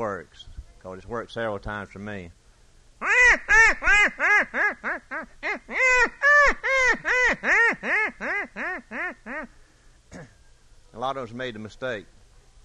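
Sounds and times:
speech: 0.0s - 2.4s, 3.3s - 10.3s, 10.9s - 12.2s
man imitating duck quacks for duck hunting: 3.0s - 9.5s.

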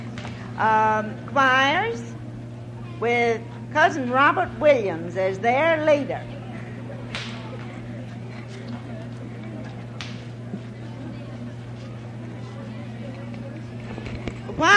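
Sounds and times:
faint murmur of crowd noise: 0.0s - 14.7s
speech: 0.6s - 2.1s, 3.0s - 6.4s
sharp loud whip cracks: 7.1s - 7.4s.

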